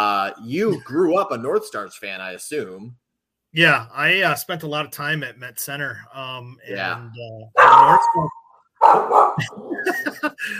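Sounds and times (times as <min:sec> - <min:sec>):
speech: 0:00.0 - 0:10.5
dog barking: 0:07.6 - 0:09.5
laughter: 0:09.4 - 0:10.5.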